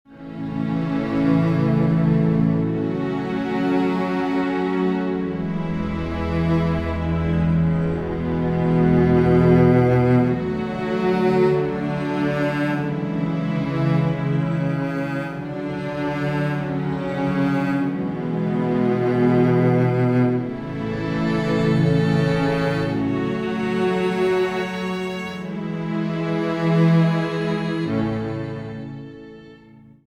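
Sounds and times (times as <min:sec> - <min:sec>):
string music without drums: 0:00.1 - 0:30.0.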